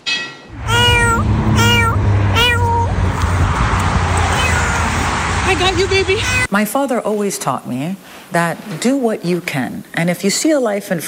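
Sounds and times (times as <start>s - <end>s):
cat meowing: 0.5s - 3.0s, 4.2s - 5.0s
low rumble: 0.5s - 6.4s
speech: 5.6s - 11.0s
hiss: 6.5s - 11.0s.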